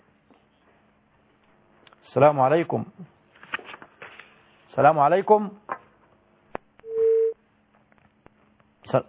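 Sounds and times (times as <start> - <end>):
speech: 2.1 - 3.2, 4.8 - 5.6
telephone line tone after a dropped call: 6.9 - 7.4.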